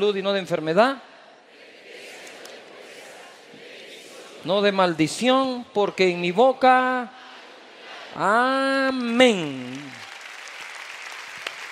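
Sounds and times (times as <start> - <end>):
speech: 0.0 - 1.1, 4.4 - 7.2, 8.2 - 10.0
church congregation applauding after a spoken declaration of faith: 8.8 - 11.6.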